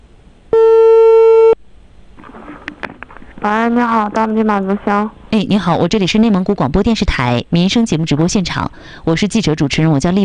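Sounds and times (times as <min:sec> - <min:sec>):
electronic telephone tone as a call is dialed to a township government office landline in Inner Mongolia: 0:00.5 - 0:01.6
speech: 0:03.4 - 0:10.2.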